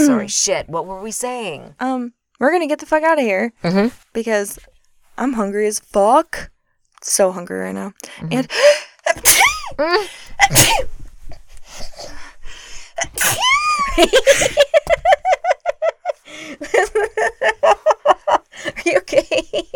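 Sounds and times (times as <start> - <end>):
speech: 0.0 - 11.0, 14.0 - 15.0, 16.3 - 18.0, 18.6 - 19.7
loud explosive sneezes: 9.2 - 9.8, 10.4 - 10.9, 13.0 - 13.6
rhythmic breathy giggling: 13.8 - 19.7.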